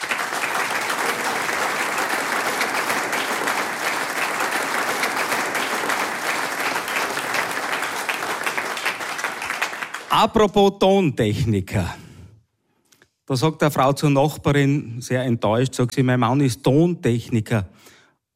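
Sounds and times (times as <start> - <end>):
audience applause: 0.0 - 10.2
speech: 10.2 - 12.0, 13.3 - 18.3.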